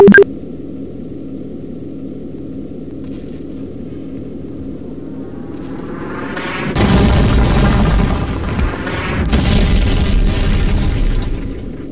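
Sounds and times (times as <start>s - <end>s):
steady low hum: 2.6s - 11.9s
heavy booming detonations of intercepted missiles: 4.4s - 11.9s.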